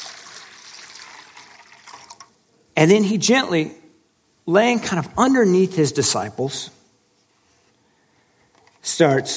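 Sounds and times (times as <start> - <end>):
water poured into a wash basin for washing feet: 0.0 - 2.3
speech: 2.8 - 3.8, 4.5 - 6.8, 8.9 - 9.3.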